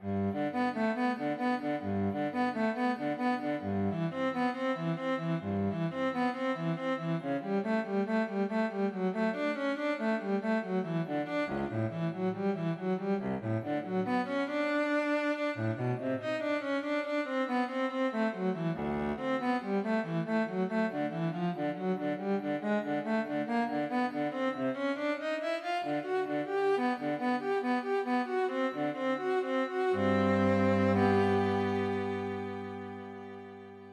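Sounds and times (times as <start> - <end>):
cello piece: 0.0 - 33.9.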